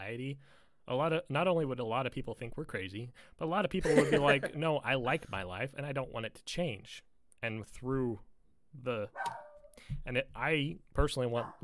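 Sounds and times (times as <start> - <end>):
speech: 0.1 - 11.6
laughter: 3.8 - 5.2
pet dog barking: 9.2 - 9.8, 11.4 - 11.6.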